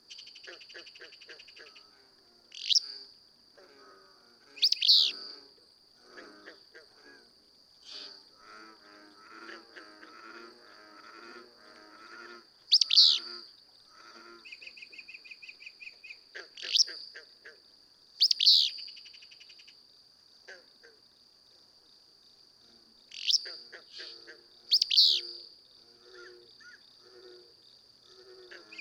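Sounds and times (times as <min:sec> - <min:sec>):
continuous high insect-like tone: 0:00.0 - 0:17.2, 0:18.0 - 0:28.7
willow flycatcher giving loud wheezy bursts: 0:00.4 - 0:05.5, 0:06.1 - 0:15.3, 0:18.2 - 0:18.8, 0:23.1 - 0:27.5, 0:28.1 - 0:28.7.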